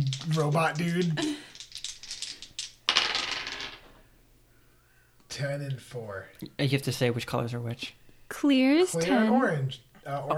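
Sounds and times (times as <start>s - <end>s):
dice rattling: 0.0s - 4.0s
speech: 0.2s - 1.4s, 5.4s - 10.3s.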